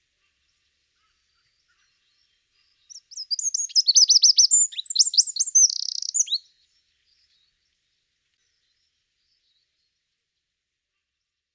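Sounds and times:
Eurasian wren Troglodytes troglodytes song: 2.8 - 6.5.

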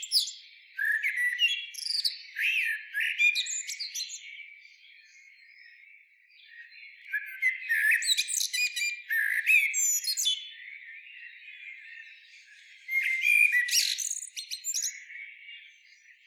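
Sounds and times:
common blackbird Turdus merula squeaky chattering notes and short whistles: 0.0 - 4.2, 7.0 - 10.5, 12.9 - 15.2.

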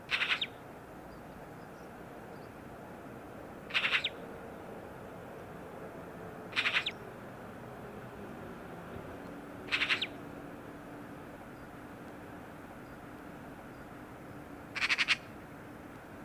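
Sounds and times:
Eurasian magpie Pica pica giving harsh rattling chatter: 3.7 - 4.1, 6.5 - 7.0, 9.7 - 10.2, 14.8 - 15.3.

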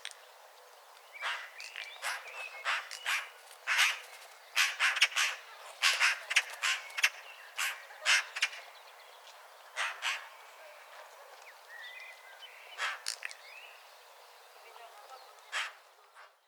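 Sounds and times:
Eurasian magpie Pica pica chattering: 1.2 - 4.0, 4.6 - 8.7.

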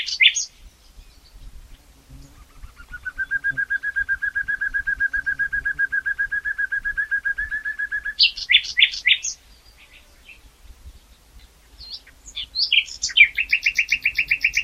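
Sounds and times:
common nightingale Luscinia megarhynchos song: 0.0 - 14.6.

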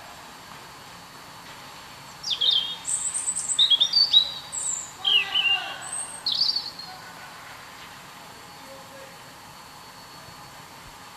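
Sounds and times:
European robin Erithacus rubecula song: 2.1 - 7.0.

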